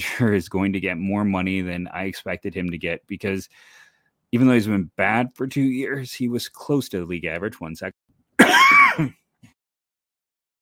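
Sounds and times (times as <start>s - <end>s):
speech: 0.0s - 8.1s, 9.0s - 9.2s
single loud harsh cough: 8.4s - 9.2s.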